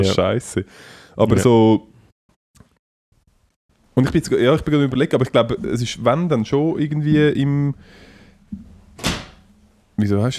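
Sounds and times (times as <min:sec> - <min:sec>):
speech: 0:00.0 - 0:01.9, 0:04.0 - 0:09.1, 0:10.0 - 0:10.3
door swinging shut into its latch: 0:08.6 - 0:09.5.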